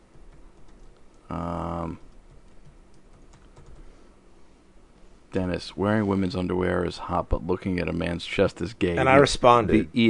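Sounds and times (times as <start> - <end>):
computer keyboard typing clicks: 0.1 - 1.3, 1.9 - 3.9
speech: 5.4 - 10.0.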